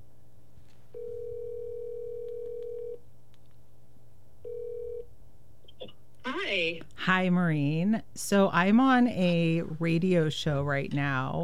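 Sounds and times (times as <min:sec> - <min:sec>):
telephone ringback tone over a line: 0:01.0 - 0:03.0, 0:04.5 - 0:05.0
telephone line click: 0:02.2 - 0:03.0
speech: 0:06.5 - 0:11.4.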